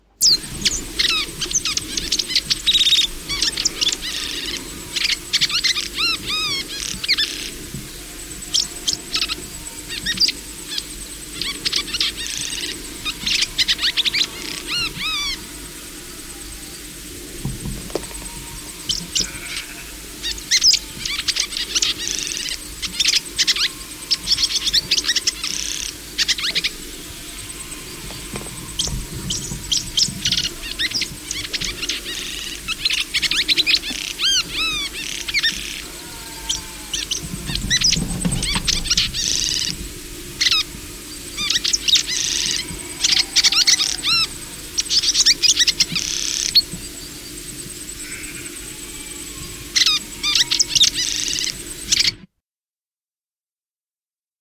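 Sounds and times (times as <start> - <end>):
Welcome Swallow calling: 0.2 - 52.2.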